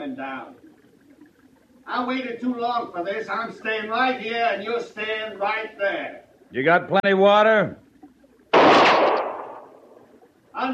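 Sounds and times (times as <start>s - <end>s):
speech: 0.2s - 0.7s, 1.8s - 7.8s, 10.6s - 10.7s
pistol gunshot: 8.5s - 9.8s.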